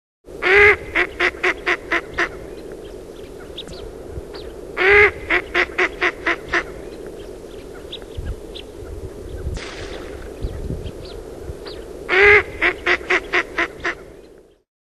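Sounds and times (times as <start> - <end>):
Australian shoveler calling: 0.4 - 2.4, 4.8 - 6.7, 12.1 - 14.0.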